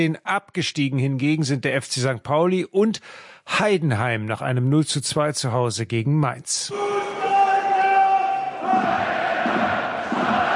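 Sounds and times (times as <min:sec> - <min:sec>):
speech: 0:00.0 - 0:07.1
large stadium crowd chanting support: 0:06.7 - 0:10.5
massed singing of stadium fans: 0:06.7 - 0:10.5.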